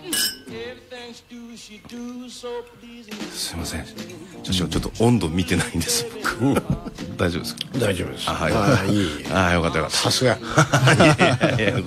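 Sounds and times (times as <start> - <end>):
glasses clinking in a toast: 0.0 - 0.5
speech: 0.8 - 11.8
laughter: 8.4 - 11.8.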